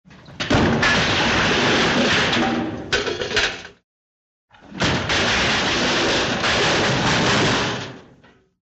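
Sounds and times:
crash of something falling: 0:00.5 - 0:02.7, 0:04.7 - 0:08.1.

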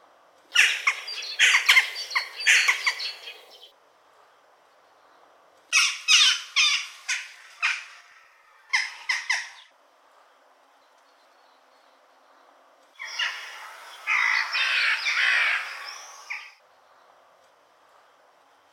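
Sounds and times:
jackdaws calling in spring: 0:00.5 - 0:03.7, 0:05.7 - 0:09.7, 0:13.0 - 0:16.6.

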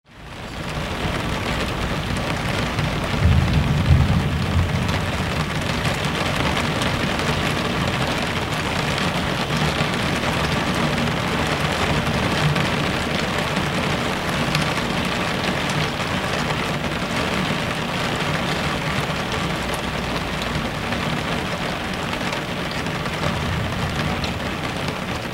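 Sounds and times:
rain outside the window: 0:00.0 - 0:25.3
thunder outside the window: 0:02.1 - 0:17.3, 0:22.6 - 0:25.3.

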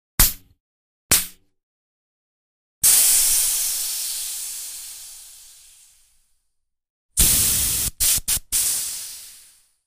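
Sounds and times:
air being let out of a wheel: 0:02.8 - 0:06.3, 0:07.2 - 0:09.8.

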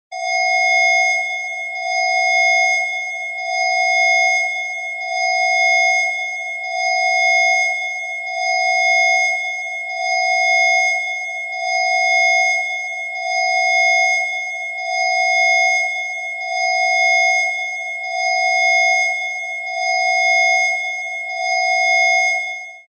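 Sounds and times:
emergency alarm signal: 0:00.1 - 0:22.9.

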